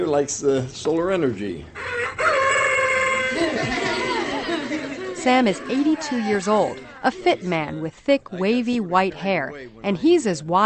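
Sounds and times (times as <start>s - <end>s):
speech: 0.0s - 2.2s, 3.4s - 4.2s, 5.2s - 10.6s
faint noise: 0.0s - 10.6s
solar-powered plastic toy rooster crowing: 1.8s - 4.0s
laughter: 3.0s - 7.9s.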